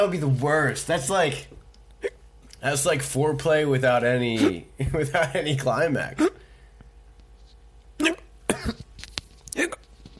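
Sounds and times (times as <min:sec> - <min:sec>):
speech: 0:00.0 - 0:01.6, 0:02.6 - 0:06.4, 0:08.0 - 0:08.2
person imitating hiccups with their voice: 0:02.0 - 0:02.2, 0:04.4 - 0:04.7, 0:06.2 - 0:06.4, 0:08.0 - 0:08.9, 0:09.5 - 0:09.9.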